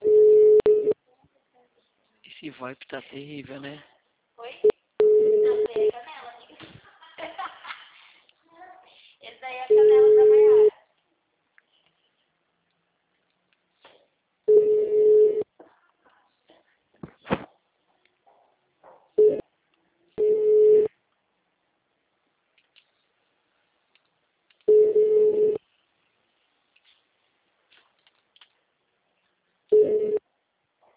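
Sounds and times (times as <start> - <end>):
telephone line tone on an unanswered call: 0.0 - 1.0, 5.0 - 5.9, 9.7 - 10.7, 14.5 - 15.4, 20.2 - 20.9, 24.7 - 25.6, 29.7 - 30.2
speech: 2.4 - 3.9
laughter: 6.6 - 8.2
crackle: 26.0 - 29.6.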